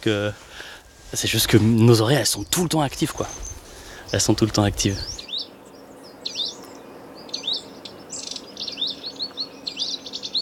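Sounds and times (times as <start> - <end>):
speech: 0.0 - 3.5, 4.1 - 5.2
low hiss: 0.0 - 10.4
wallcreeper singing twittering phrases: 2.2 - 10.4.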